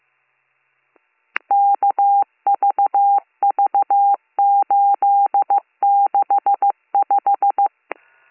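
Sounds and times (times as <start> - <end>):
telephone tone: 1.5 - 7.7.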